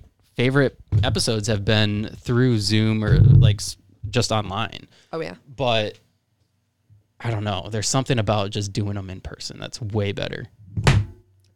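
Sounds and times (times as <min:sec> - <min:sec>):
speech: 0:00.4 - 0:06.0, 0:07.2 - 0:11.1
brief low rumble: 0:03.0 - 0:03.6
phone dropping onto a hard surface: 0:10.8 - 0:11.3.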